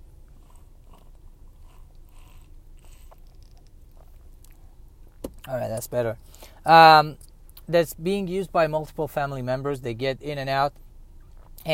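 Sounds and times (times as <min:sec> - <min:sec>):
low steady rumble: 0:00.0 - 0:11.7
person sipping water: 0:00.3 - 0:05.2
swallowing sounds: 0:00.3 - 0:05.2
speech: 0:05.5 - 0:10.8.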